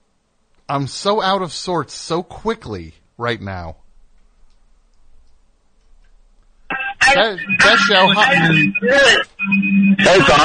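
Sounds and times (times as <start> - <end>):
speech: 0.7 - 3.8, 7.1 - 10.4
voices from a caller's radio over a phone line: 6.7 - 10.4.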